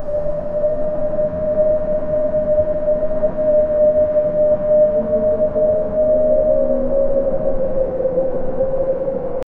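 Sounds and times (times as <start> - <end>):
eerie ancient ruins ambience: 0.0 - 9.4.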